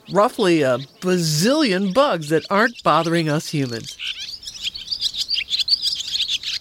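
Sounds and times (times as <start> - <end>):
barn swallow chattering in high twittering notes: 0.0 - 6.6
speech: 0.1 - 4.2.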